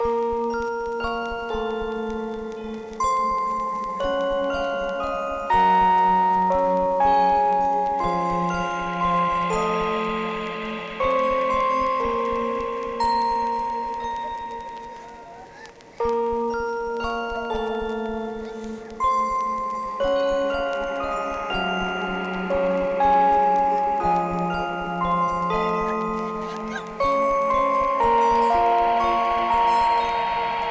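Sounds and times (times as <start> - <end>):
creepy cinematic music box melody: 0.0 - 30.6.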